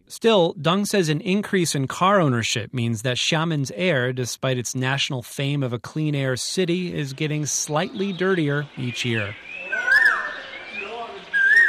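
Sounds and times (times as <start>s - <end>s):
speech: 0.1s - 9.5s
birds singing on a quiet tree-lined alley on an island: 7.6s - 11.6s.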